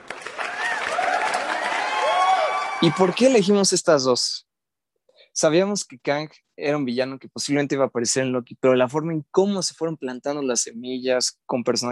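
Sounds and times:
crowd applauding: 0.0s - 3.5s
faint cheers and whistles: 0.4s - 3.2s
speech: 2.8s - 4.4s, 5.4s - 11.9s.

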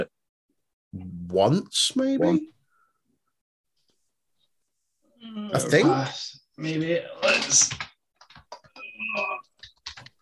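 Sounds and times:
speech: 0.9s - 2.6s, 5.2s - 7.9s
typing on a computer keyboard: 9.6s - 10.2s.

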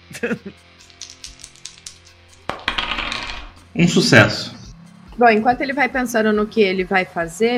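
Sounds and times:
speech: 0.2s - 1.0s, 3.8s - 4.6s, 5.2s - 7.5s
dice rolling on a table: 0.8s - 3.6s.

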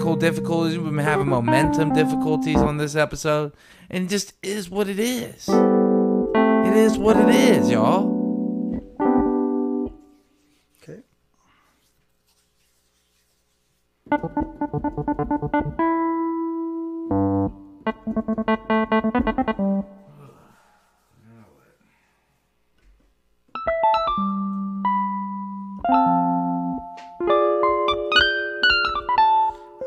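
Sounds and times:
electronic keyboard chords and notes: 0.0s - 2.9s, 5.5s - 10.2s, 14.1s - 20.1s, 23.6s - 29.8s
speech: 0.1s - 5.8s, 6.7s - 8.1s, 14.1s - 15.8s.

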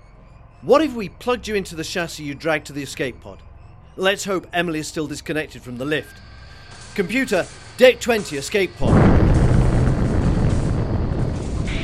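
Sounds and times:
speech: 0.6s - 6.3s, 7.0s - 9.3s
rumbling roar of an explosion on a ship's upper decks: 8.8s - 11.8s.

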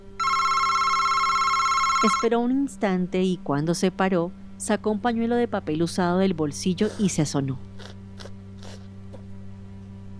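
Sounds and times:
telephone bell ringing: 0.0s - 2.3s
speech: 2.0s - 7.7s.

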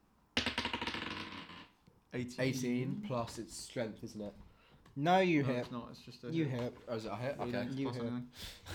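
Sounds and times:
dice clattering across a hard tabletop: 0.4s - 1.7s
speech: 2.1s - 8.7s.

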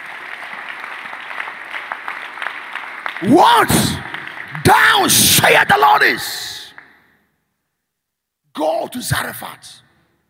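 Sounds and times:
audience clapping: 0.0s - 7.0s
speech: 3.2s - 6.6s, 8.6s - 9.8s.

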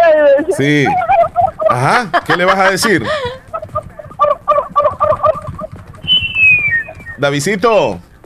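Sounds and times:
speech: 0.6s - 1.0s, 1.7s - 3.3s, 7.2s - 8.1s
laughter: 0.6s - 4.2s
turkey gobbling: 0.6s - 7.3s
thin high whistle-like call sliding downward: 4.2s - 7.4s.

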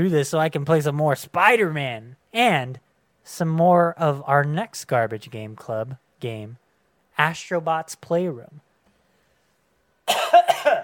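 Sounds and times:
speech: 0.0s - 6.6s, 7.2s - 8.6s
person coughing harshly and wetly with open mouth: 10.0s - 10.8s.

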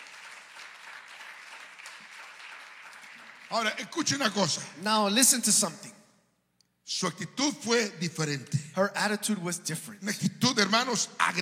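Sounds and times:
church congregation clapping during worship: 0.0s - 4.7s
speech: 3.5s - 6.0s, 7.0s - 11.3s.

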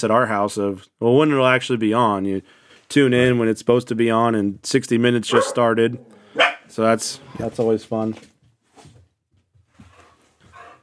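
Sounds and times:
speech: 0.0s - 8.3s
dog barking: 5.3s - 6.7s.

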